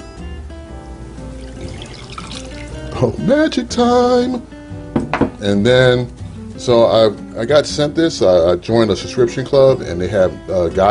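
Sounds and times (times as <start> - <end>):
double 4-ounce pour of whiskey into a glass: 1.2 - 3.0
speech: 3.0 - 4.6, 5.4 - 10.9.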